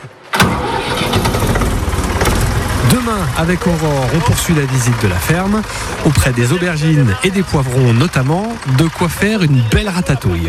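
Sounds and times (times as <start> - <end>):
farm tractor engine starting and running: 0.3 - 10.4
speech: 3.4 - 10.4.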